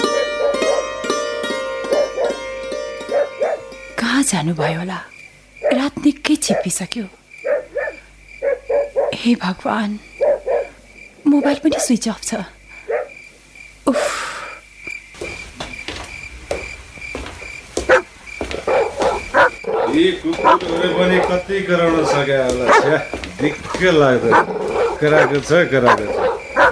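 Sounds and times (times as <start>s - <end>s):
dogs barking at night: 0.0s - 3.8s, 5.6s - 9.3s, 10.1s - 12.0s, 12.8s - 13.2s, 17.8s - 26.7s
speech: 4.3s - 5.1s, 5.7s - 7.2s, 9.1s - 10.1s, 11.3s - 12.6s, 20.0s - 26.1s.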